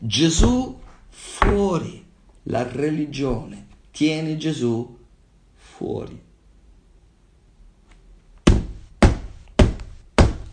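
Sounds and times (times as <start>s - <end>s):
speech: 0.0s - 5.0s, 5.8s - 6.2s
firm knocks on a door: 8.5s - 10.5s.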